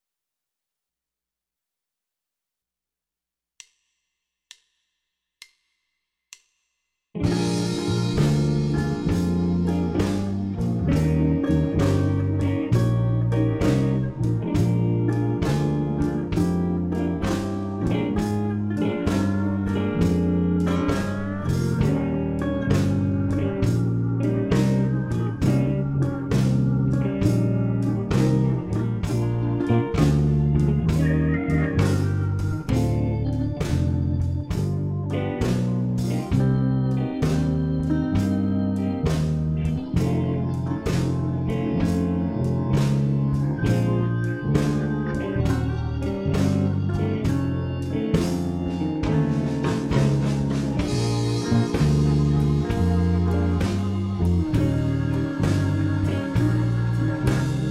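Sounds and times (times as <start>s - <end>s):
blues bass line in B flat: 7.2s - 57.6s.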